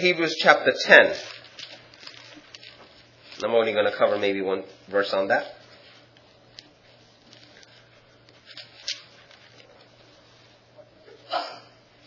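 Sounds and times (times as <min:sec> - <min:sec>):
speech: 0:00.0 - 0:01.3, 0:03.4 - 0:05.6
quick sharp sneeze: 0:11.2 - 0:11.8.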